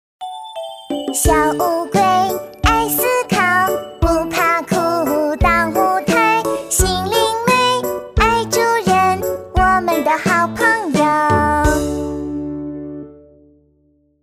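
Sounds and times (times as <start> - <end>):
girl singing a cover song in a sweet cute style: 1.1 - 12.0.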